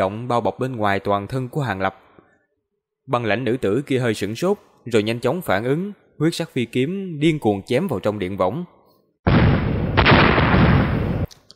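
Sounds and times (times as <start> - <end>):
speech: 0.0 - 2.0, 3.1 - 8.8
series of explosions: 9.3 - 11.3.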